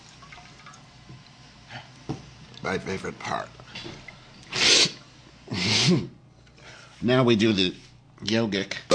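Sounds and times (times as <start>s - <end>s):
water dripping and trickling after a nasal rinse: 0.0s - 1.4s
speech: 2.6s - 4.0s, 5.9s - 6.2s, 7.0s - 8.8s.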